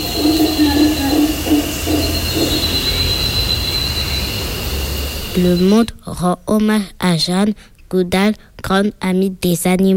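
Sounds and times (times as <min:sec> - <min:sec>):
passenger train locomotive rumbling past: 0:00.0 - 0:05.9
thin high whine of a passenger train locomotive: 0:00.0 - 0:06.0
speech: 0:05.4 - 0:09.9.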